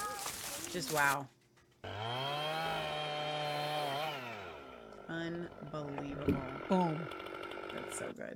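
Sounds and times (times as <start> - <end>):
speech: 0.7 - 2.4, 5.1 - 8.3
chainsaw cutting wood into slabs: 1.8 - 8.3.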